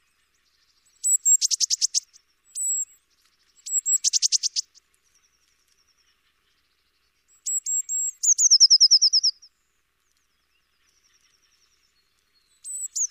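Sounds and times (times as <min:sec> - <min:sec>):
Eurasian blue tit singing: 0:00.7 - 0:04.8, 0:07.3 - 0:09.4, 0:12.0 - 0:13.0.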